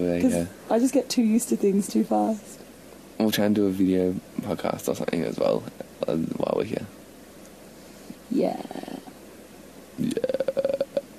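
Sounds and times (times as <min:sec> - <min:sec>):
speech: 0:00.0 - 0:02.6, 0:03.2 - 0:07.0, 0:08.3 - 0:09.0, 0:10.0 - 0:10.2
croaky gurgling burp-like sounds: 0:10.0 - 0:11.1.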